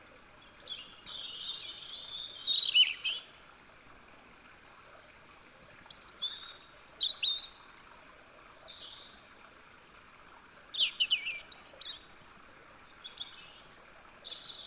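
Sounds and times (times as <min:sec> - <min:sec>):
European robin Erithacus rubecula singing: 0:00.4 - 0:03.3, 0:05.9 - 0:07.6, 0:10.4 - 0:12.2, 0:13.0 - 0:14.6.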